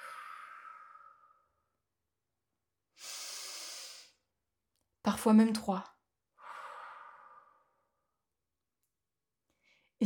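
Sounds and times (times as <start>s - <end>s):
deep breaths taken slowly while settling into relaxation: 0.0s - 1.7s, 3.0s - 4.2s, 6.4s - 8.0s
speech: 5.1s - 5.9s.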